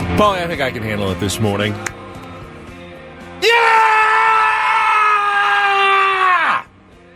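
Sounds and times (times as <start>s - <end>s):
speech: 0.2s - 1.9s
loud raw guttural scream sagging in pitch: 3.4s - 6.7s.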